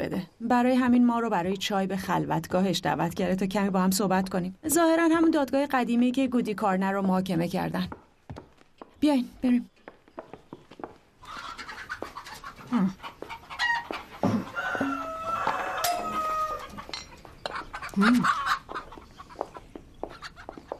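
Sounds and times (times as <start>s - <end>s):
speech: 0.0s - 8.0s, 9.0s - 9.7s, 12.7s - 13.1s, 18.0s - 18.4s
chickens clucking: 11.2s - 20.7s
rooster crowing: 13.7s - 17.0s.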